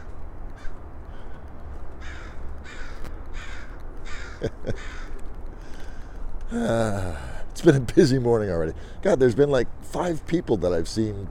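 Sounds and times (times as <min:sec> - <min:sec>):
crows cawing in the morning: 0:00.0 - 0:07.3
steady low outdoor rumble: 0:00.0 - 0:11.2
speech: 0:04.4 - 0:05.0, 0:06.5 - 0:11.2.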